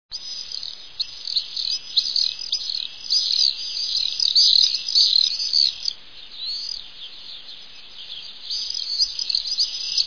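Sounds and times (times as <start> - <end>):
swift calls: 0.1 - 10.0.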